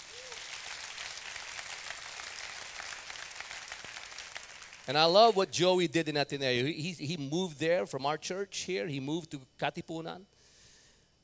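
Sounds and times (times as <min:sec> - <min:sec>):
crowd applauding: 0:00.0 - 0:05.0
speech: 0:04.9 - 0:10.3.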